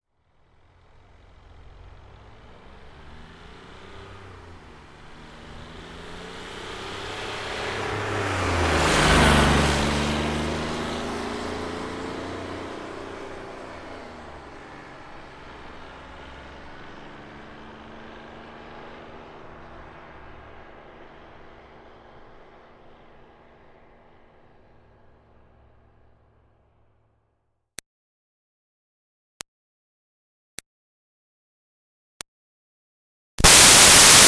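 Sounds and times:
2005 Smart Fortwo car accelerating fast: 0:00.2 - 0:25.5, 0:33.4 - 0:34.2.

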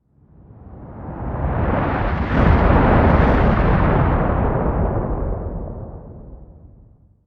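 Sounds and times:
explosion shockwave passing by: 0:01.4 - 0:06.8.

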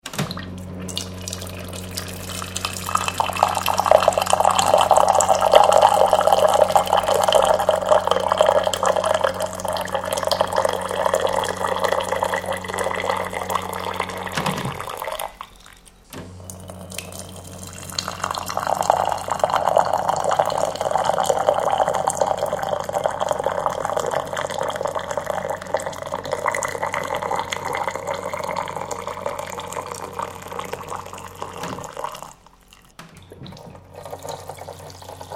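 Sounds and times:
electric water dispenser pouring water into cups: 0:00.8 - 0:35.3.

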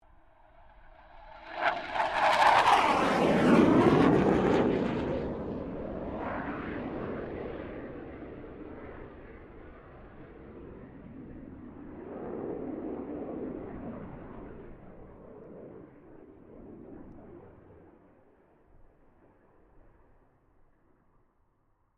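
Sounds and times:
1997 BAE Hawk 127 aircraft passing: 0:00.2 - 0:17.7.

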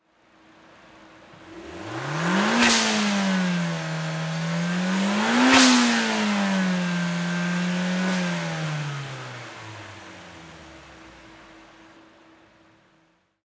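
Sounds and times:
Nissan Silvia race car engine revving twice: 0:00.8 - 0:12.0.

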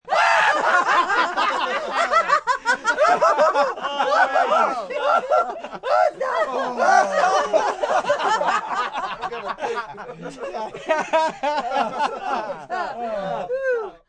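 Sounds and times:
group of 5-10 thirty-something friends belly laughing loudly: 0:00.0 - 0:14.0.

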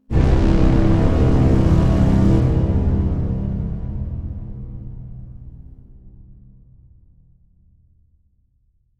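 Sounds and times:
orchestral strings overture in C: 0:00.1 - 0:05.8.

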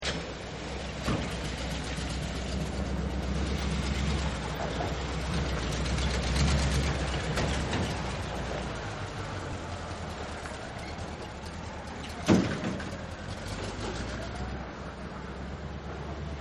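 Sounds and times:
traffic and cars: 0:00.0 - 0:16.3
truck siren in traffic: 0:02.4 - 0:15.4.

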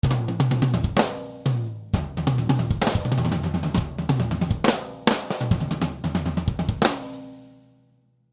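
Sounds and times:
tribal rock tom groove on a drum kit: 0:00.0 - 0:07.5.

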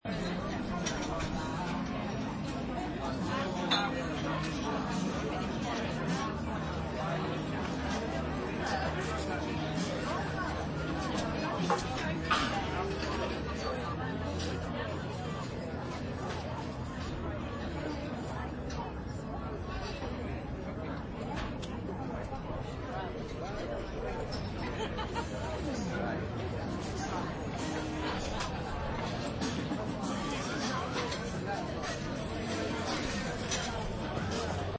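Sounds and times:
faint music from a jukebox: 0:00.0 - 0:34.7
people eating and drinking in a bar: 0:00.0 - 0:34.7
people laughing in a bar heard from outside through open door: 0:24.5 - 0:26.0.

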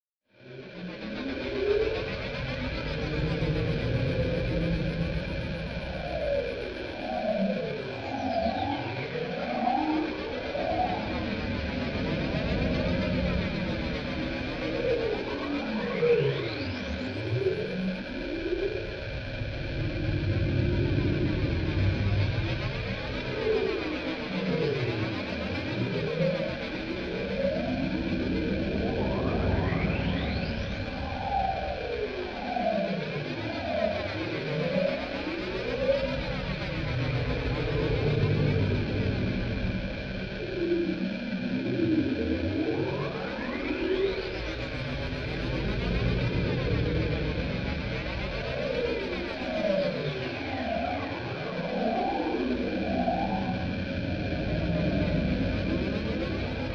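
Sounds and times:
synth drone: 0:00.4 - 0:56.7.

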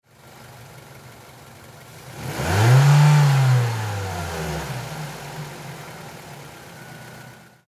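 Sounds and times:
Mazda 3 car engine medium revving: 0:01.8 - 0:07.6.

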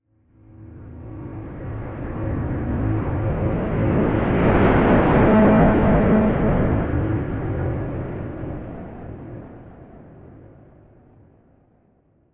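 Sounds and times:
large sci-fi mothership whooshing overhead: 0:02.7 - 0:08.2.

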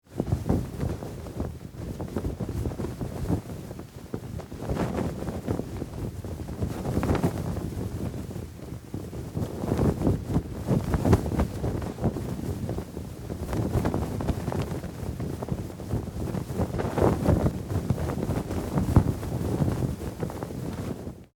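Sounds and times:
cloth flag flapping in wind: 0:00.0 - 0:21.3.

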